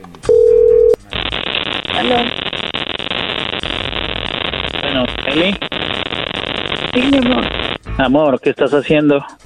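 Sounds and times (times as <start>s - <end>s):
phone call dialing tone beep: 0.3s - 1.0s
phone line hiss as the call connects: 0.3s - 7.8s
speech: 2.0s - 2.3s, 5.3s - 5.7s, 6.9s - 9.4s.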